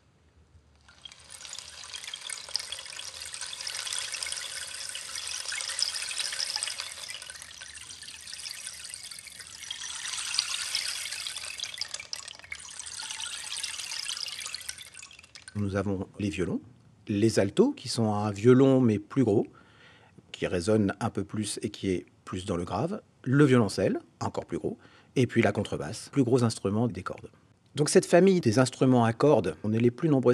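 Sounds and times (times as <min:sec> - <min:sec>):
rain stick tipped slowly with cascading patter of tiny pellets: 0:00.7 - 0:16.0
speech: 0:15.6 - 0:19.6, 0:20.4 - 0:30.3.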